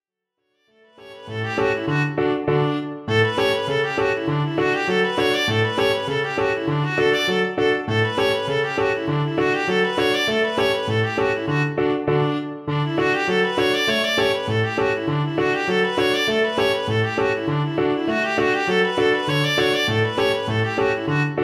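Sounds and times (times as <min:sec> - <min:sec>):
viola playing a scale: 0:01.0 - 0:21.4.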